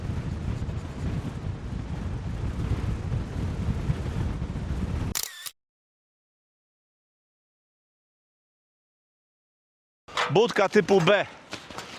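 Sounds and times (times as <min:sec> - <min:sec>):
strong wind buffeting the microphone outdoors beside a bird nest box on an oak tree: 0:00.0 - 0:05.2
speech: 0:10.2 - 0:11.4.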